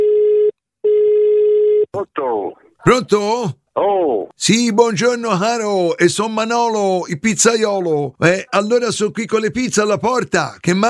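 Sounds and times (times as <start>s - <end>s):
telephone ringing tone on an outgoing prank call: 0.0s - 1.9s
speech: 2.8s - 10.8s.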